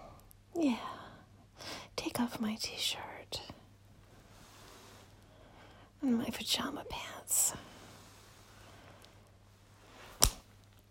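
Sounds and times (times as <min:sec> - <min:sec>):
speech: 0:02.2 - 0:03.5, 0:06.0 - 0:07.7
crisp sharp slap on the buttocks: 0:10.2 - 0:10.4.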